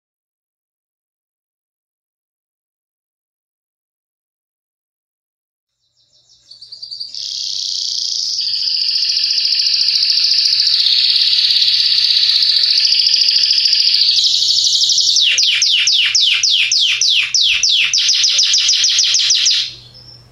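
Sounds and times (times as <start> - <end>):
Yellow Belgian canary singing trills: 5.8 - 20.3.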